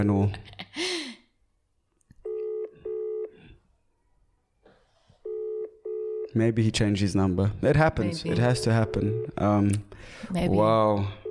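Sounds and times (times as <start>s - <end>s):
speech: 0.0s - 0.9s, 6.4s - 11.2s
telephone ringback tone: 2.2s - 3.4s, 5.2s - 6.3s, 8.3s - 9.4s.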